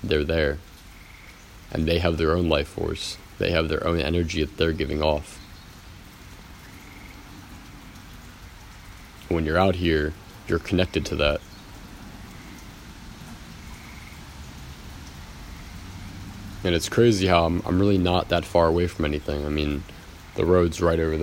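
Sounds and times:
speech: 0.0s - 0.7s, 1.7s - 5.4s, 9.3s - 11.5s, 16.6s - 21.2s
steady rain falling in a park: 0.0s - 21.2s.

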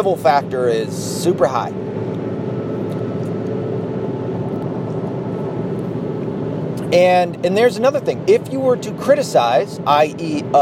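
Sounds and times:
speech: 0.0s - 2.0s, 6.9s - 10.6s
steady low car engine and road rumble while driving: 0.0s - 10.6s.

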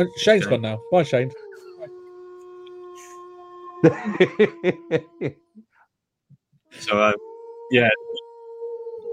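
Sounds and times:
speech: 0.0s - 1.4s, 3.8s - 5.7s, 6.7s - 8.2s
wolf howl sound effect: 0.0s - 5.4s, 6.8s - 9.1s
person chuckling and laughing: 3.8s - 5.4s.

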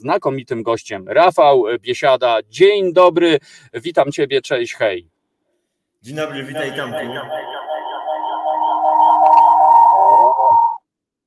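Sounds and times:
speech: 0.0s - 5.1s, 6.0s - 7.6s
voice drenched in delay and reverb effects: 6.1s - 10.8s.

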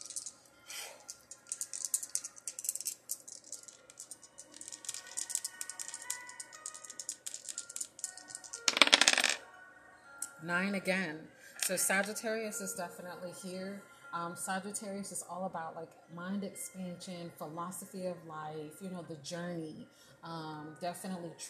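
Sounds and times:
dice rattling and clattering across a hard surface: 0.0s - 0.4s, 1.0s - 9.4s
speech: 10.5s - 21.4s.

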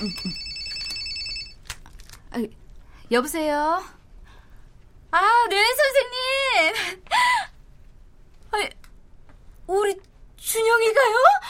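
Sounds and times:
speech: 0.0s - 0.4s, 2.3s - 4.0s, 5.1s - 7.0s, 8.5s - 8.8s, 9.7s - 11.4s
mother's mobile phone ringtone chiming: 0.0s - 1.6s.

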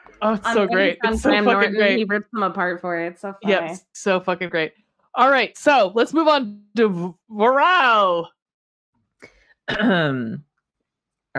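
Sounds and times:
speech: 0.2s - 8.4s, 9.2s - 10.5s
voiced rasping cough: 9.7s - 10.3s
faint breathy throat clearing: 9.7s - 10.4s.

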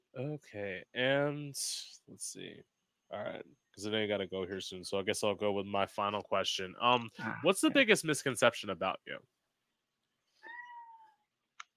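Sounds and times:
speech: 0.2s - 9.4s
domestic cat meowing: 10.4s - 11.1s.

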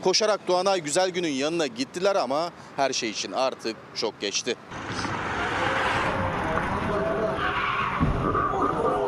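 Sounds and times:
speech: 0.0s - 5.2s
fast-moving car tires skidding under hard braking: 4.8s - 9.0s.

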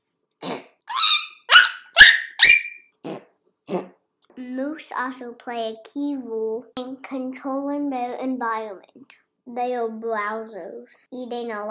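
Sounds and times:
moose alarm barks: 0.9s - 2.8s
speech: 4.8s - 11.6s.

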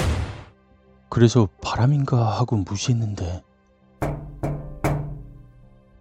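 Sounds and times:
speech: 1.1s - 3.5s
knocking on a window: 4.0s - 5.9s.

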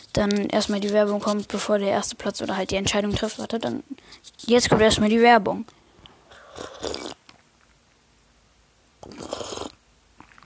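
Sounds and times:
speech: 0.1s - 5.8s
person drinking a beverage with noisy slurping and gulping: 6.3s - 7.2s, 9.0s - 10.4s.

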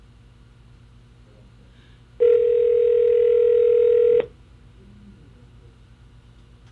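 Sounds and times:
telephone dial tone as a call is placed: 2.2s - 4.3s.

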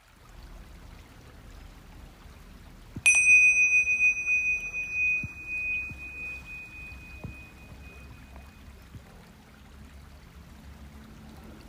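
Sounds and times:
meditation bell chime: 3.1s - 8.7s.

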